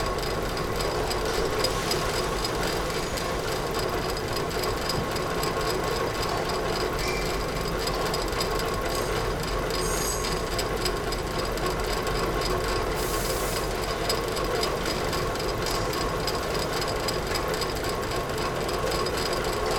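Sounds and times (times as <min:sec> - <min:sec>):
print shop interior machine: 0:00.0 - 0:19.7.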